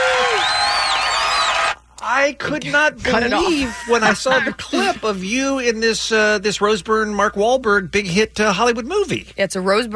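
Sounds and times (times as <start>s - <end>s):
studio-style applause with cheering and whoops: 0.0s - 1.8s
high whistles over the crowd: 0.2s - 1.8s
speech: 2.2s - 9.9s.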